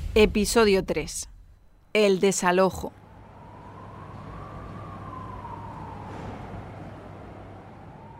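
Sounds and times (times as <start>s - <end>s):
speech: 0.2s - 1.3s, 2.0s - 3.0s
ambulance siren wailing after the earthquake in Lorca: 3.0s - 8.1s
heavy low rumble of engines and traffic: 3.0s - 8.1s.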